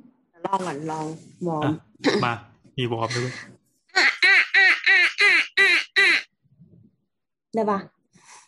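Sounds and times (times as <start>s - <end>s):
speech: 0.5s - 4.1s, 7.6s - 8.0s
person imitating duck quacks: 4.0s - 6.3s.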